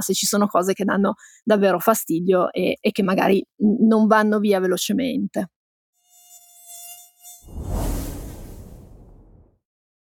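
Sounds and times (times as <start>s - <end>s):
speech: 0.0s - 5.6s
mosquito wings buzzing with high-pitched whine: 6.0s - 8.1s
loud broadband rush of air: 7.5s - 9.5s.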